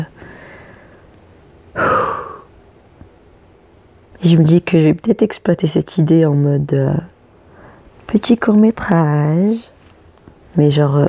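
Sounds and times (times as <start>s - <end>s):
deep breath drawn in: 0.2s - 1.1s
speech: 4.2s - 7.1s, 8.1s - 9.7s, 10.6s - 11.0s.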